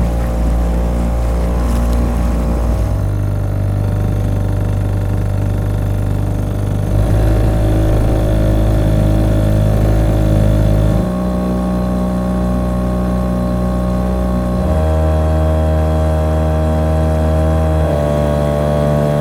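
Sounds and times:
Tohatsu 3.5 motor boat engine running with throttle changes: 0.0 - 19.2.

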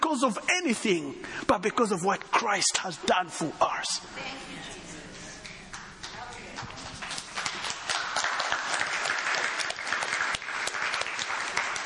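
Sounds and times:
speech: 0.1 - 4.8
audience clapping: 5.4 - 11.8.

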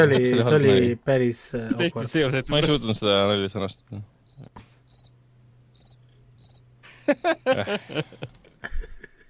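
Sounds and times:
laughter: 0.0 - 0.8, 6.9 - 9.2
speech: 0.0 - 4.7, 7.1 - 8.8
low steady hum: 0.0 - 9.2
crickets chirping sound effect: 1.7 - 8.1.

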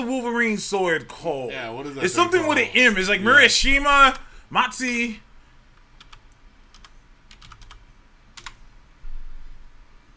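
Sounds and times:
speech: 0.0 - 5.2
low steady hiss: 0.0 - 10.1
typing on a computer keyboard: 6.0 - 7.8, 8.4 - 8.6.

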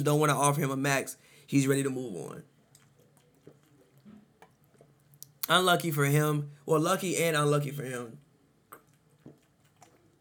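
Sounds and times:
speech: 0.0 - 2.5, 5.5 - 8.2
person gulping and swallowing water: 2.6 - 5.5, 8.6 - 10.1.

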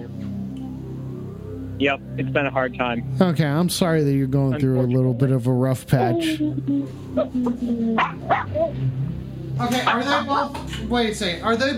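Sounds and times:
speech: 1.8 - 11.7
two dogs barking at once: 8.0 - 8.8.

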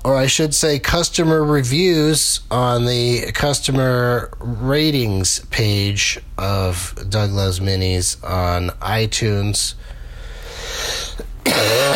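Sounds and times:
speech: 0.0 - 10.0
rough throaty cough: 11.1 - 11.9.

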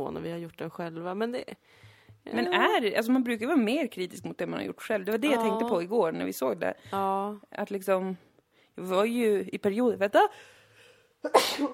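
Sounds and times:
speech: 0.0 - 10.6, 11.2 - 11.7
single sharp sneeze: 11.2 - 11.7.

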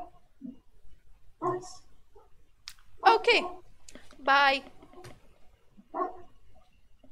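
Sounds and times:
dog barking: 1.4 - 2.3, 5.9 - 6.4
speech: 1.6 - 1.8, 3.2 - 3.6, 4.2 - 4.8.

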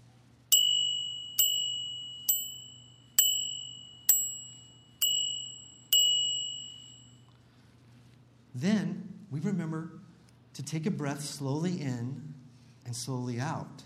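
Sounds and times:
temple bell being struck: 0.5 - 7.2
speech: 8.6 - 10.0, 10.6 - 12.3, 12.9 - 13.8.

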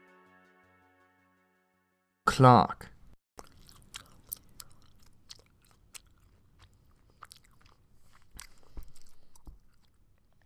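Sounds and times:
speech: 2.4 - 2.9
loud wet gum chewing with smacking mouth sounds: 3.4 - 10.4.

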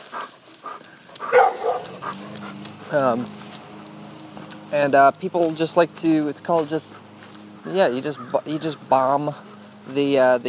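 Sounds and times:
outdoor murmur: 0.0 - 10.4
dog barking: 1.2 - 2.8
speech: 2.9 - 3.4, 4.7 - 7.0, 7.6 - 10.4.

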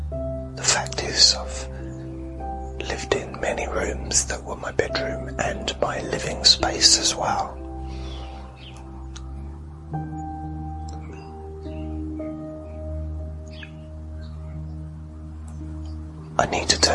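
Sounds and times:
faint birds chirping outside, heard from a bedroom: 0.0 - 16.9
speech: 0.6 - 1.7, 2.9 - 7.6, 16.4 - 16.9.

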